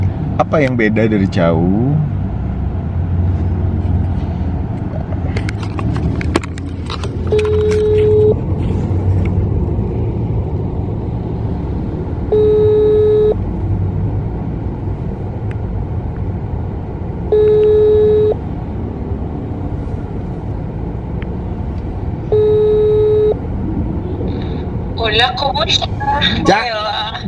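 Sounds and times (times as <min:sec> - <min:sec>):
constant rumble of car interior noise: 0:00.0 - 0:27.2
speech: 0:00.5 - 0:02.2
phone ringback tone inside a car: 0:07.3 - 0:08.4, 0:12.3 - 0:13.4, 0:17.3 - 0:18.4, 0:22.3 - 0:23.4.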